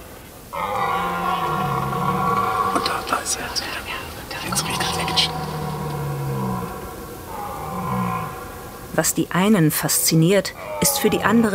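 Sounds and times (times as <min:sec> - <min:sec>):
steady outdoor background: 0:00.0 - 0:11.5
red deer stag roaring in the German wilderness: 0:00.5 - 0:03.6, 0:04.4 - 0:08.9, 0:10.6 - 0:11.5
speech: 0:09.0 - 0:11.5.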